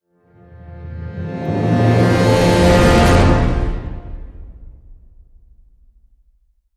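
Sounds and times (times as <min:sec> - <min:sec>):
orchestral brass hit: 0:00.4 - 0:05.4.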